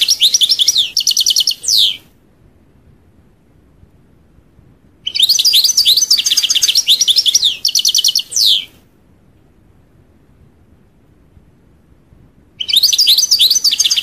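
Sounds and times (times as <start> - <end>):
European goldfinch twittering and chattering song: 0.0 - 2.0, 5.0 - 8.7, 12.6 - 14.0.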